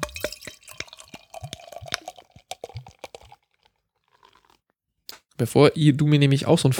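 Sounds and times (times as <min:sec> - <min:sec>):
bottle and glass clinks: 0:00.0 - 0:01.9
beer glugging from a bottle into a glass: 0:00.0 - 0:04.6
speech: 0:05.4 - 0:06.7.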